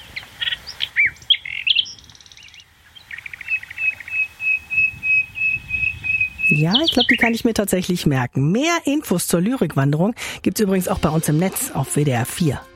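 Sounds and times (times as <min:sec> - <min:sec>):
nightingale singing: 0:00.0 - 0:07.6
speech: 0:06.5 - 0:12.7.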